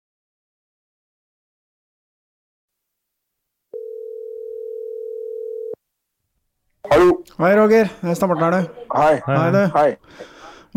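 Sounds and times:
telephone ringing tone while placing a call: 3.8 - 5.8
speech: 7.0 - 10.7.

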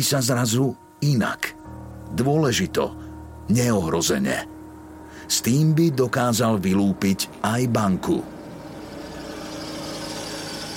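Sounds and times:
speech: 0.0 - 4.6, 5.3 - 8.4
car engine humming: 8.2 - 10.7.

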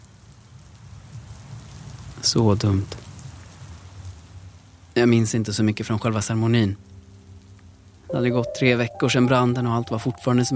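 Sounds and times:
rain falling at a small chapel: 0.0 - 10.5
speech: 2.2 - 3.0, 5.0 - 6.9, 8.1 - 10.5.

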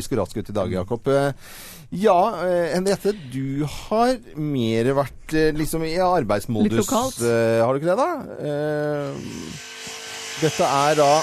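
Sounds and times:
speech: 0.0 - 11.2
circular saw motor whining: 9.0 - 11.2.

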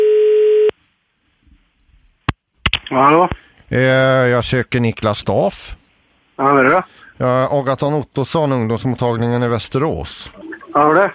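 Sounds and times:
telephone tone of an outgoing call: 0.0 - 0.7
speech: 2.9 - 5.8, 6.4 - 11.1.

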